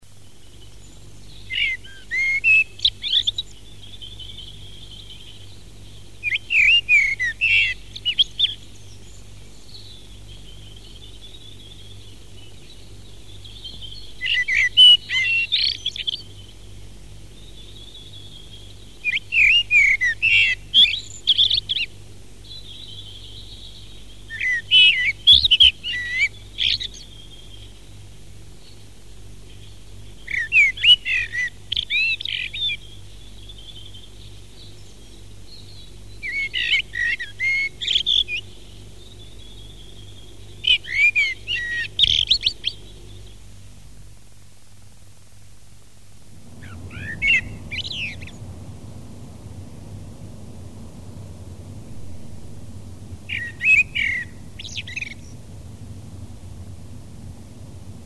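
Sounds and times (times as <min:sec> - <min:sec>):
blackbird: 0:00.4 - 0:43.5, 0:46.6 - 0:48.4, 0:53.3 - 0:55.5.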